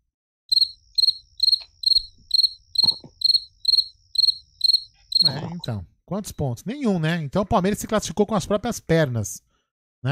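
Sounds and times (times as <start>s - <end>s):
cricket chirping: 0.5s - 5.8s
speech: 5.2s - 10.1s.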